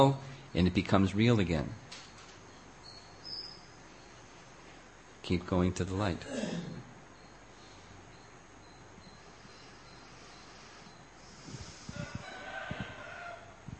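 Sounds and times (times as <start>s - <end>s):
speech: 0.0s - 1.9s, 5.3s - 6.7s
steady outdoor noise: 0.0s - 13.7s
rooster crowing: 11.5s - 13.7s.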